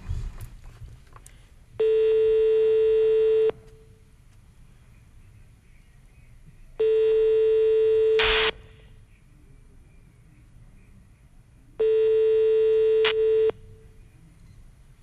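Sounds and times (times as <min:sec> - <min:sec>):
mobile phone ringback tones before reaching voicemail: 0:01.8 - 0:03.6, 0:06.8 - 0:08.5, 0:11.8 - 0:13.6.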